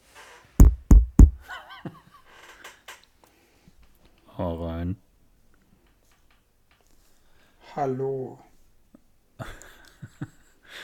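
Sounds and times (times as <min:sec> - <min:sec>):
loud knocking on a door: 0:00.6 - 0:01.5
laughter: 0:01.4 - 0:02.4, 0:09.4 - 0:10.8
speech: 0:04.4 - 0:05.0, 0:07.8 - 0:08.5.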